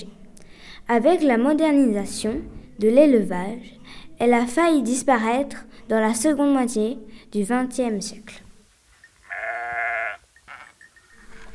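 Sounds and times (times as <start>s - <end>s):
speech: 0.8s - 8.4s
Rove goat bleating: 9.1s - 11.5s.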